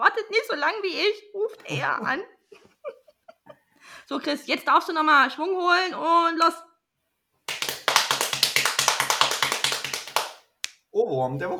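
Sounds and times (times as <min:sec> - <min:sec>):
speech: 0:00.3 - 0:02.4, 0:04.0 - 0:06.7, 0:10.9 - 0:11.5
rapid energetic knocking on a hard surface: 0:07.5 - 0:10.4.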